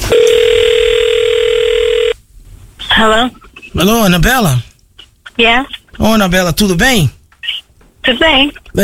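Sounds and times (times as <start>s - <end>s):
telephone ringback tone on an outgoing call: 0.1s - 2.2s
speech: 3.0s - 4.7s, 5.4s - 7.2s, 8.1s - 8.8s.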